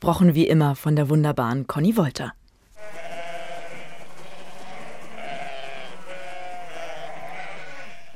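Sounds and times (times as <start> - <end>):
speech: 0.0 - 2.4
domestic sheep bleating: 2.8 - 8.1.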